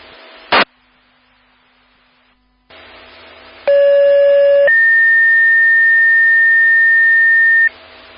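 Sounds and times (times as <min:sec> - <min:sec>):
fire dispatch radio static burst: 0:00.5 - 0:00.7
fire dispatch radio long steady high disregard tone: 0:03.7 - 0:07.7.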